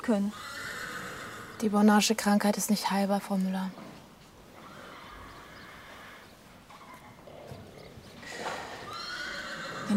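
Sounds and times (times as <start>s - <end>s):
speech: 0.0s - 0.6s, 1.6s - 3.9s
horse whinnying: 0.2s - 1.7s, 4.5s - 9.9s
soft hoof clops and shuffling: 3.7s - 9.9s.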